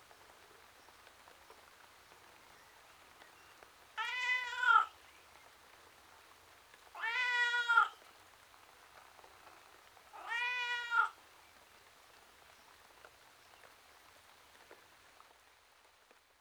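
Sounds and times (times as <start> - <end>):
domestic tom cat meowing plaintively outside: 4.0 - 4.9, 7.0 - 8.0, 10.2 - 11.2.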